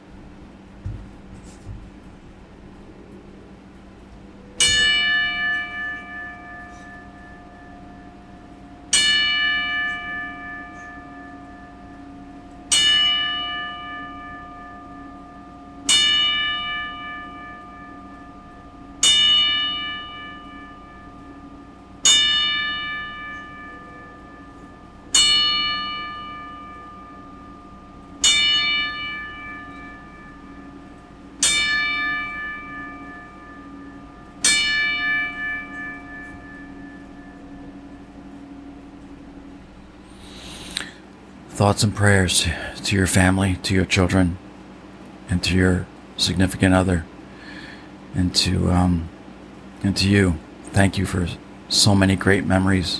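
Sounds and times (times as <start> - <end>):
faint hum: 0.0 - 52.9
single bell tolling as a ten bell salute: 4.5 - 40.9
speech: 41.6 - 44.4, 45.3 - 47.1, 48.2 - 49.1, 49.8 - 52.9.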